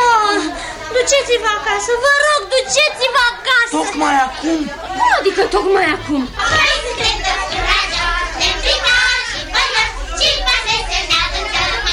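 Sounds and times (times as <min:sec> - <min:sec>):
children playing and shouting in a neighbourhood: 0:00.0 - 0:11.9
speech: 0:01.0 - 0:07.6.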